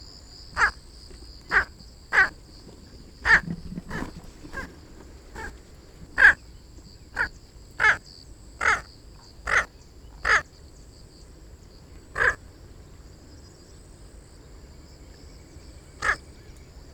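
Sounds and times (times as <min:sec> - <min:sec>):
squacco heron giving harsh crow-like croaking calls: 0:00.5 - 0:00.9, 0:01.5 - 0:02.4, 0:03.2 - 0:06.5, 0:07.1 - 0:10.5, 0:12.0 - 0:12.5, 0:16.0 - 0:16.5.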